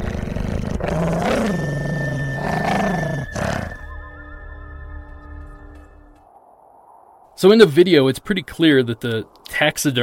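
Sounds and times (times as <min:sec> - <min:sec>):
small dog growling: 0:00.0 - 0:03.8
speech: 0:00.8 - 0:01.6, 0:07.4 - 0:10.0.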